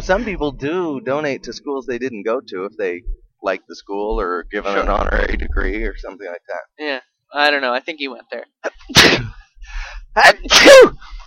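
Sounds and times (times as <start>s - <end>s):
speech: 0.0s - 11.2s
person sneezing: 8.9s - 9.4s, 10.5s - 11.0s
quiet breathing: 9.4s - 10.1s.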